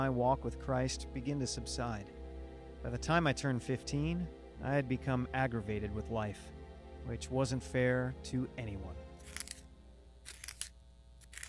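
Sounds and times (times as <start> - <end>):
speech: 0.0 - 2.2, 2.8 - 9.4
pencil being sharpened: 9.2 - 9.6, 10.2 - 11.4.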